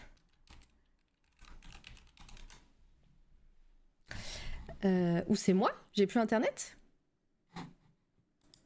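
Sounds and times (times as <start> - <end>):
typing on a computer keyboard: 0.1 - 2.6
speech: 4.8 - 6.8.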